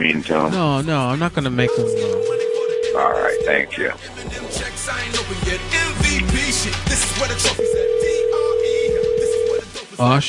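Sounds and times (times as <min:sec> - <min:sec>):
speech: 0:00.0 - 0:08.0, 0:10.0 - 0:10.2
busy mixed sound: 0:00.0 - 0:09.7
steady mid-pitched telephone line tone: 0:01.7 - 0:03.7, 0:07.6 - 0:09.6.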